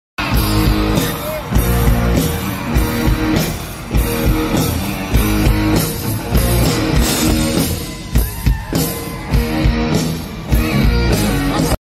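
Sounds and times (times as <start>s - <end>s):
instrumental rock and roll music: 0.2s - 11.7s.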